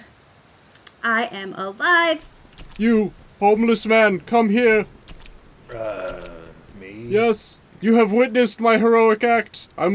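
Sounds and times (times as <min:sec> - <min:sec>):
speech: 0:01.2 - 0:05.0, 0:05.7 - 0:06.3, 0:07.1 - 0:09.9
voice imitating a robot's mechanical breathing: 0:05.7 - 0:07.5.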